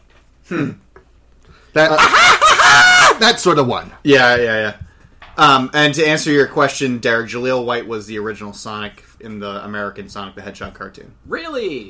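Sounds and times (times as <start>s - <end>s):
speech: 0.5s - 0.8s, 1.8s - 2.4s, 3.2s - 4.8s, 5.4s - 11.8s
person imitating a robot chicken's cackling laugh: 1.9s - 3.2s.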